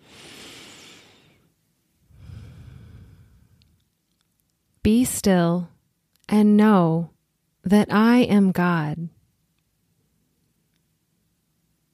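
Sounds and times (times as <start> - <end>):
slow deep human breath during guided meditation: 0.0 - 3.8
speech: 5.0 - 5.7, 6.3 - 9.2.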